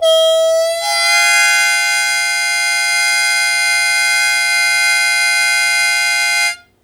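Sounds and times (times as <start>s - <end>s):
harmonica blues chord attack in B flat: 0.0s - 6.8s.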